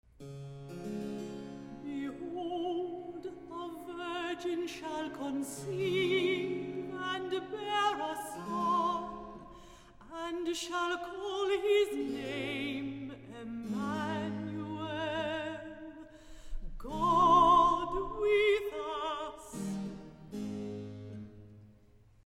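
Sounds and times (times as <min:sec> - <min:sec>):
alto singing recitative with orchestra: 0:01.7 - 0:16.0, 0:16.8 - 0:19.6.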